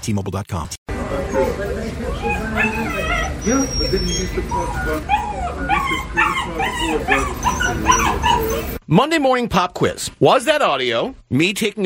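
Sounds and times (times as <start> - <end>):
speech: 0.0 - 11.8
steady hum: 0.9 - 8.8
small dog yipping and whimpering in a CVS store: 2.1 - 8.8.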